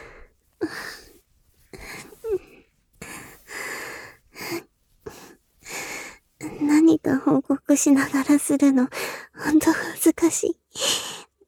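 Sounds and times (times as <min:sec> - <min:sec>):
heavy breathy panting with wheezy rasp: 0:00.0 - 0:06.6
speech: 0:07.1 - 0:11.0.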